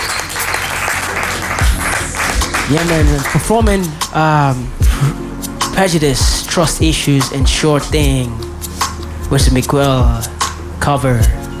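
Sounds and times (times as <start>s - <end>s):
live crowd clapping: 0.0s - 3.9s
speech: 2.7s - 8.4s, 9.3s - 11.4s.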